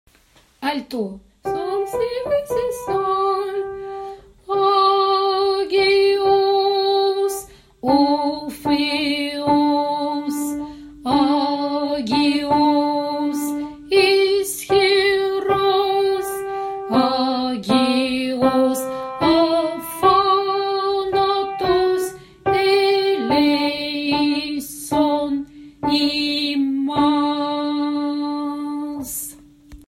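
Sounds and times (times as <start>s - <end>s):
Greek alto voice singing: 1.4s - 29.5s.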